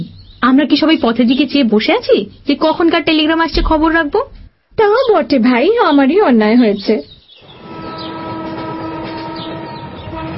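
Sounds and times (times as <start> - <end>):
speech: 0.5 - 7.1
sustained horn-like tones: 7.4 - 10.3
train passing in front of a bungalow: 7.4 - 10.3.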